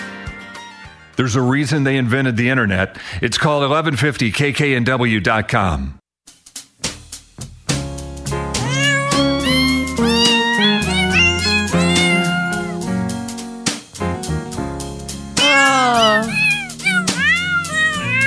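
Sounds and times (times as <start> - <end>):
steady instrumental backing: 0.0 - 1.2, 6.3 - 18.2
speech: 1.2 - 6.0
cat meows pitched into a Christmas melody: 8.5 - 13.2, 15.4 - 18.2.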